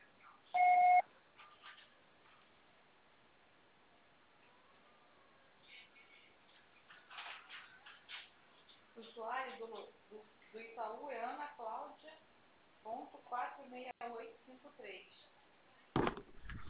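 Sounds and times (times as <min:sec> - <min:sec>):
answering machine beep tone: 0:00.6 - 0:01.0
speech: 0:09.0 - 0:12.1, 0:12.8 - 0:15.2.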